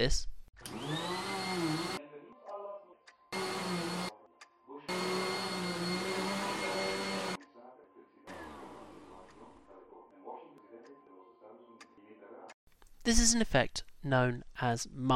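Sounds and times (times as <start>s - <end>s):
speech: 0.0s - 0.3s, 13.1s - 15.1s
vacuum cleaner roaring: 0.7s - 2.0s, 3.4s - 4.1s, 4.9s - 7.4s, 8.3s - 9.2s.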